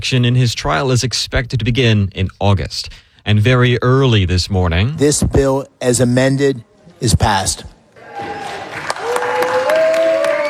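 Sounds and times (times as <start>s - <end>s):
speech: 0.0s - 8.4s
crowd noise in the Senate: 4.8s - 10.4s
Republican senators applauding in the Senate after a vote: 8.0s - 10.4s
drawn-out cheering voice: 8.0s - 10.4s.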